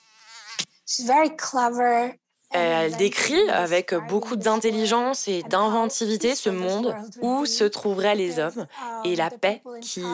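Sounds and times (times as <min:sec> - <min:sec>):
mosquito buzzing: 0:00.0 - 0:00.8
speech: 0:00.9 - 0:10.1.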